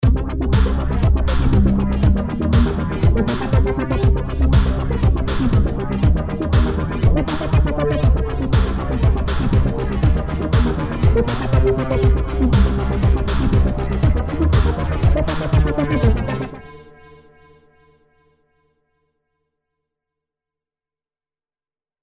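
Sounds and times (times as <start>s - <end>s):
simple bass sequence: 0.0s - 16.6s.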